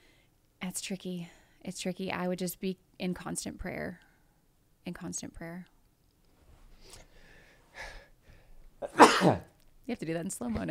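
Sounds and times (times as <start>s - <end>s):
speech: 0.7s - 4.1s, 4.8s - 5.7s, 9.2s - 10.6s
sneeze: 8.8s - 9.5s.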